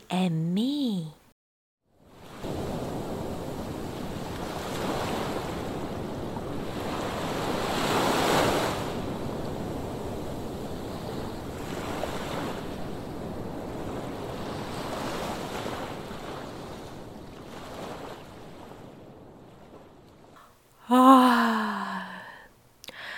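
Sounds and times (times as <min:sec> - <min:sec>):
speech: 0:00.1 - 0:01.2
soft ocean waves washing in and out: 0:02.0 - 0:22.4
brief breathy tonal sigh: 0:20.8 - 0:23.1.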